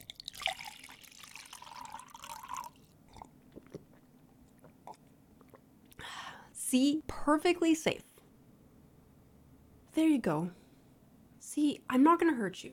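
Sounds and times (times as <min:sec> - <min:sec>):
water pouring into a cup: 0:00.0 - 0:03.9
person sipping and gulping water: 0:00.0 - 0:06.1
speech: 0:06.7 - 0:08.1, 0:10.0 - 0:10.6, 0:11.6 - 0:12.7.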